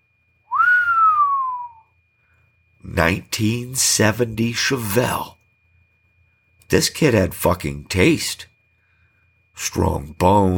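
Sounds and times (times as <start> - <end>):
person whistling: 0.5 - 2.0
speech: 2.9 - 5.4, 6.7 - 8.5, 9.6 - 10.5.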